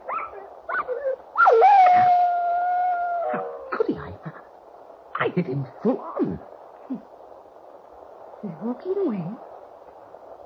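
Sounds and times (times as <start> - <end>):
dog howling: 0.0 - 3.8
dog yipping and whimpering: 0.1 - 2.2
speech: 5.4 - 7.1, 8.6 - 9.5.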